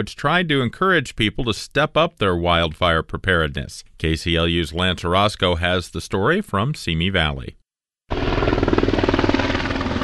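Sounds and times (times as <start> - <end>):
speech: 0.0 - 8.3
county air unit helicopter blade chop swooping low over a hillside: 8.1 - 10.0.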